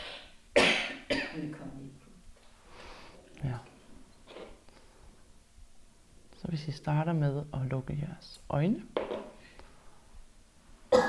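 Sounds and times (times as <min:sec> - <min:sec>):
person coughing harshly: 0:00.6 - 0:01.5
speech: 0:06.6 - 0:09.1.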